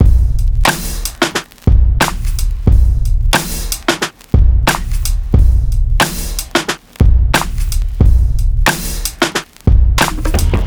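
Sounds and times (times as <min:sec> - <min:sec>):
drum loop: 0:00.0 - 0:10.6.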